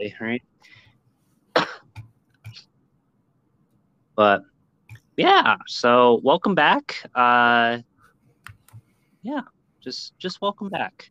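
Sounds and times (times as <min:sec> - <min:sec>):
speech: 0:00.0 - 0:00.8, 0:04.2 - 0:04.5, 0:05.2 - 0:07.9, 0:09.2 - 0:11.1
person getting over an illness coughing: 0:01.5 - 0:02.0
throat clearing: 0:01.6 - 0:02.0.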